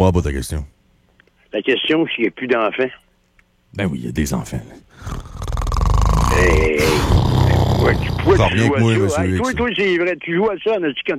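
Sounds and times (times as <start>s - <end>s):
speech: 0.0s - 0.8s, 1.5s - 3.0s, 3.7s - 5.4s, 6.4s - 11.1s
person imitating snoring with their voice in a mocking way: 5.0s - 9.4s.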